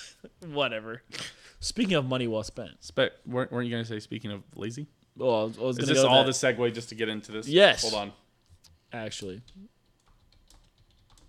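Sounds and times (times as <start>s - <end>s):
low hum: 0.0s - 11.2s
speech: 0.3s - 8.2s, 8.9s - 9.7s
typing on a computer keyboard: 9.2s - 11.2s.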